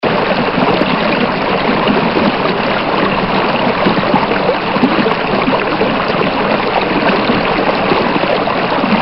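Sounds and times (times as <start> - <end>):
stream flowing: 0.0 - 9.0.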